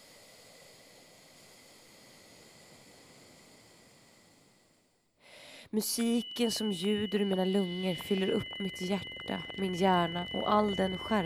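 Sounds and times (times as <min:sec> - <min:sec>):
deep inhale: 0:00.0 - 0:05.7
speech: 0:05.7 - 0:11.2.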